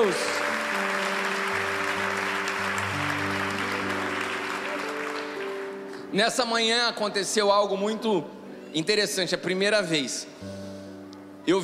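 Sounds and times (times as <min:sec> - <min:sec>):
speech: 0:00.0 - 0:00.4, 0:06.1 - 0:10.6, 0:11.4 - 0:11.6
audience applauding: 0:00.0 - 0:06.2.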